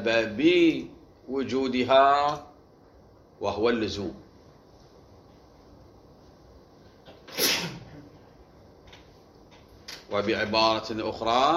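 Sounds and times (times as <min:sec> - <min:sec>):
speech: 0:00.0 - 0:02.5, 0:03.4 - 0:04.2, 0:10.1 - 0:11.5
single sharp loud sneeze: 0:07.2 - 0:08.1.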